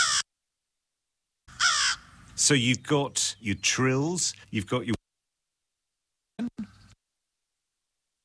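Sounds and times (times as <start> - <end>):
crow cawing with a harmonic stack call: 0.0 - 0.3, 1.5 - 2.2
speech: 2.4 - 5.0.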